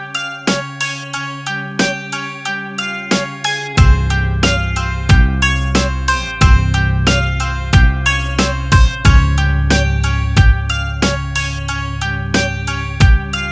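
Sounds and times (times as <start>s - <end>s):
hip hop loop in C minor: 0.5s - 1.0s, 1.8s - 2.2s, 3.1s - 13.5s.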